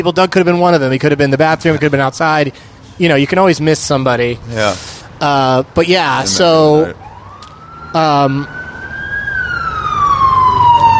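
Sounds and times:
speech: 0.0s - 7.0s, 7.9s - 8.6s
low road rumble: 0.0s - 10.9s
police car siren wailing passing outside during a traffic stop: 5.8s - 10.9s.

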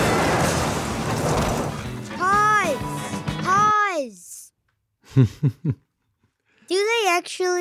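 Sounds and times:
voice mimicking police cars crashing in a movie car chase pileup: 0.2s - 2.9s
laughter: 5.1s - 5.8s
speech: 5.1s - 5.9s, 6.7s - 7.5s.

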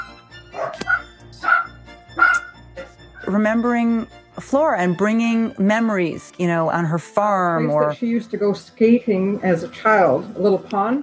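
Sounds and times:
dachshunds barking: 0.0s - 2.6s
speech: 3.3s - 11.0s.

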